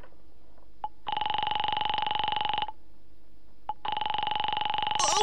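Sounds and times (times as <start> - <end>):
telephone ringing tone on the line: 0.9 - 2.8, 3.7 - 5.2.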